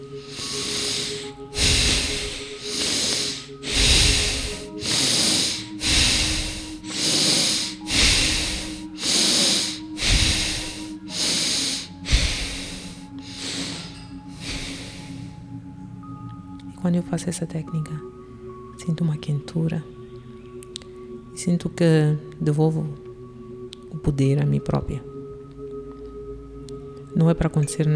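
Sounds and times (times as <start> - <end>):
breath-of-fire breathing with rapid inhaling and exhaling: 0.0 - 15.6
speech: 16.9 - 18.2, 18.9 - 20.0, 21.4 - 23.1, 24.1 - 25.1, 27.2 - 27.9.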